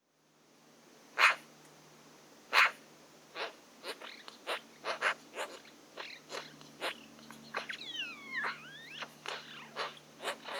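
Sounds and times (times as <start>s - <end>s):
Pica pica Eurasian magpie giving harsh rasping calls: 3.4s - 10.5s.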